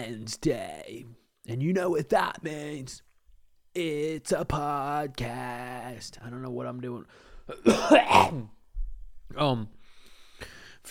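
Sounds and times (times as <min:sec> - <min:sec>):
speech: 0:00.0 - 0:03.1, 0:03.7 - 0:08.6, 0:09.3 - 0:09.8, 0:10.4 - 0:10.8
person clearing throat: 0:07.5 - 0:08.6
person coughing: 0:07.5 - 0:08.6.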